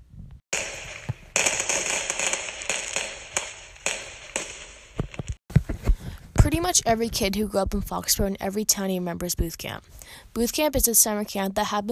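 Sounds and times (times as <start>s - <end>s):
fireworks popping and crackling over a field: 0.5s - 5.4s
speech: 6.6s - 11.9s.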